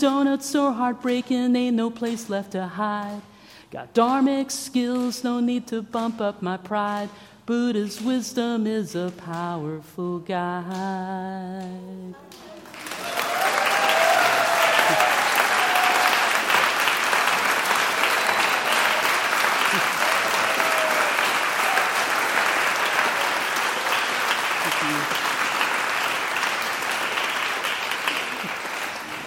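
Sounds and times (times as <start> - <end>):
speech: 0.0 - 12.5
large audience applause in a standing ovation after a song: 12.6 - 29.2
faint cheers: 12.8 - 16.6, 19.6 - 22.2.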